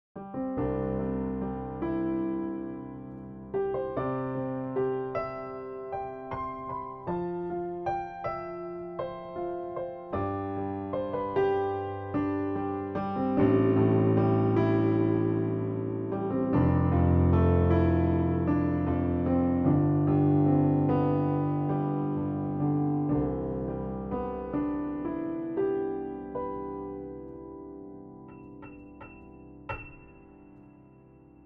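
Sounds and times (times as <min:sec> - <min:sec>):
upright piano: 0:00.2 - 0:31.4.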